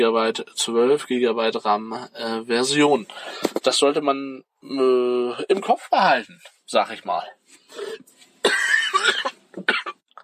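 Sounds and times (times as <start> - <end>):
speech: 0.0 - 9.8
person coughing: 7.8 - 10.0.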